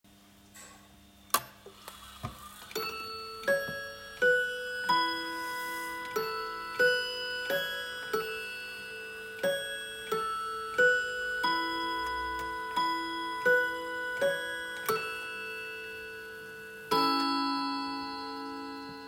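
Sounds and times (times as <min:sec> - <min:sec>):
Hermle classic mahogany clock: 0:01.7 - 0:19.0.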